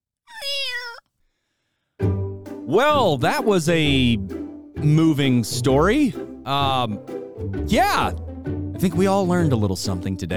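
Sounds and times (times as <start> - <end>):
single drawn-out cat meow: 0.3 - 1.1
speech: 2.7 - 10.3.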